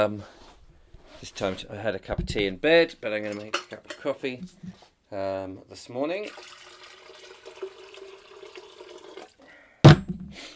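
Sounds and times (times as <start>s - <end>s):
speech: 0.0s - 0.4s, 1.2s - 6.6s
water running into a kettle: 6.2s - 9.4s
sharp clunk: 9.9s - 10.4s.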